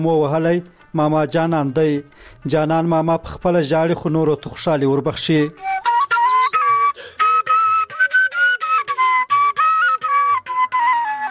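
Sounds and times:
speech: 0:00.0 - 0:06.0
man whistling a melody in a green valley village: 0:05.6 - 0:11.2.

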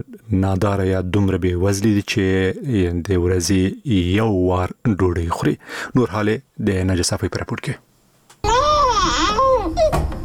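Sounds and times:
speech: 0:00.0 - 0:07.9
malnourished young child crying in Afghanistan: 0:08.4 - 0:10.0.

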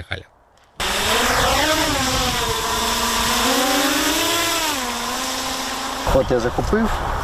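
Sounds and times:
speech: 0:00.0 - 0:00.4, 0:06.2 - 0:07.1
small self-guided kamikaze drone motor buzzing in flight: 0:00.8 - 0:06.3.

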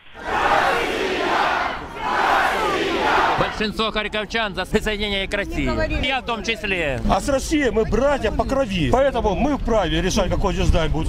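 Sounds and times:
large crowd shouting at a street rally: 0:00.1 - 0:04.3
speech: 0:03.6 - 0:11.0.

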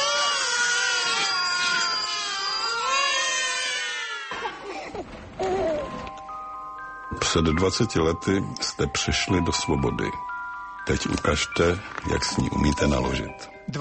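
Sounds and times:
several newborn babies crying in overlapping wavering wails: 0:00.0 - 0:06.3
speech: 0:07.3 - 0:10.3, 0:10.9 - 0:13.8.

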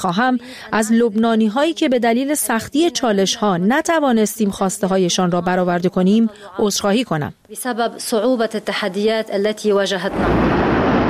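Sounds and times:
speech: 0:00.0 - 0:10.7
loud sustained roar and rumble of warehouse explosion: 0:10.1 - 0:11.0
massive warehouse explosion: 0:10.1 - 0:11.0.

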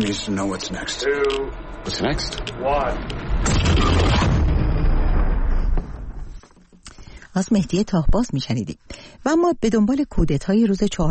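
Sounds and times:
speech: 0:00.0 - 0:04.3, 0:07.4 - 0:11.0
loud deep film explosion effect with roaring rumble: 0:01.5 - 0:06.4.

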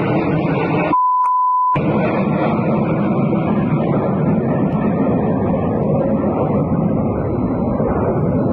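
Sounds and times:
Il-76 transport aircraft with burning engine roaring: 0:00.0 - 0:01.0, 0:01.8 - 0:08.5
short pure electronic beep: 0:00.9 - 0:01.8.

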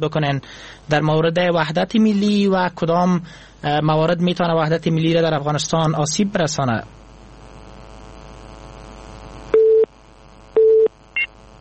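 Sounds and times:
speech: 0:00.0 - 0:07.0
telephone busy signal after a dropped call: 0:09.6 - 0:09.9, 0:10.6 - 0:11.3.

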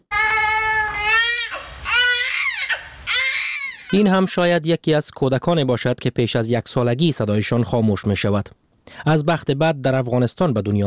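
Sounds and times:
newborn baby crying: 0:00.1 - 0:04.1
speech: 0:03.9 - 0:10.8.

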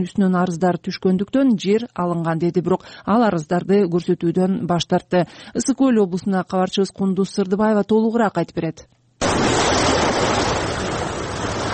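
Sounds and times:
speech: 0:00.0 - 0:09.5
lake waves washing onto municipal beach shore at Cholpon-Ata on Issyk-Kul: 0:09.2 - 0:11.7.

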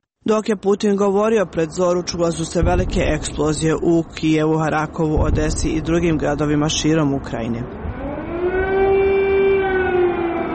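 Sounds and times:
speech: 0:00.2 - 0:07.8
air raid sirens wailing over Kyiv: 0:07.7 - 0:10.5.

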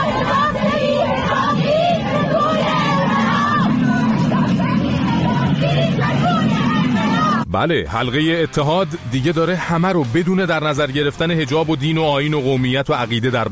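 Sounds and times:
large crowd of protesters shouting slogans in the street: 0:00.0 - 0:07.4
speech: 0:07.6 - 0:13.5.

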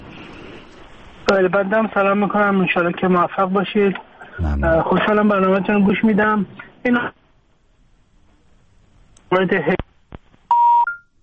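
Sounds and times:
speech: 0:01.3 - 0:07.2, 0:09.3 - 0:09.8
voice on a telephone line: 0:04.2 - 0:06.4.

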